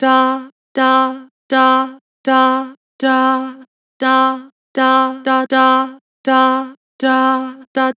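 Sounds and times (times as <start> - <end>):
vocals singing dah with vibrato: 0.0 - 7.9.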